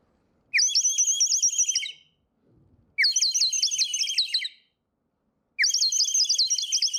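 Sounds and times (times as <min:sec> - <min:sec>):
warbling trills from a clay bird whistle filled with water: 0:00.6 - 0:02.1, 0:03.0 - 0:04.7, 0:05.6 - 0:06.9.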